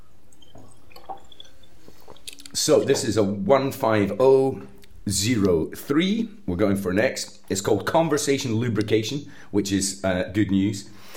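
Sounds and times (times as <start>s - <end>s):
water poured with soft splashes and drips: 0.4s - 3.2s
speech: 2.6s - 11.1s.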